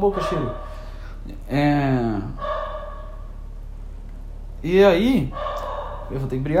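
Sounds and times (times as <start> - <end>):
dog barking: 0.0 - 1.2, 2.3 - 3.4, 5.3 - 6.3
speech: 0.0 - 2.5, 4.6 - 5.5, 6.1 - 6.5
low hum: 0.0 - 6.5.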